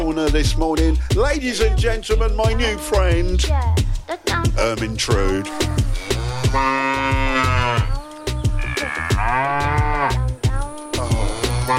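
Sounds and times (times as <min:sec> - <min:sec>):
speech: 0:00.1 - 0:07.9
cow mooing: 0:05.6 - 0:10.3, 0:10.9 - 0:11.7.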